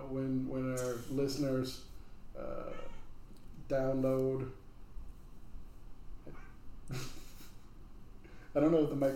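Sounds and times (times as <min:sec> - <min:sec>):
speech: 0:00.1 - 0:02.7, 0:03.7 - 0:04.6, 0:06.3 - 0:07.2, 0:08.5 - 0:09.1
cat meowing: 0:02.6 - 0:03.1.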